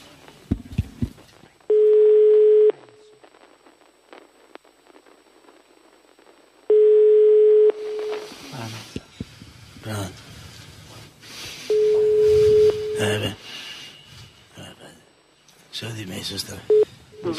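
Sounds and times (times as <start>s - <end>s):
telephone line ringing tone: 1.7s - 2.8s, 6.7s - 8.3s, 11.7s - 13.3s
speech: 16.3s - 17.3s.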